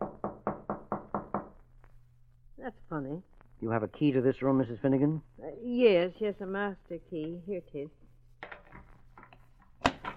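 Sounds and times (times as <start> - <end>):
firm knocks on a wooden room door: 0.0 - 1.6
speech: 2.6 - 8.0.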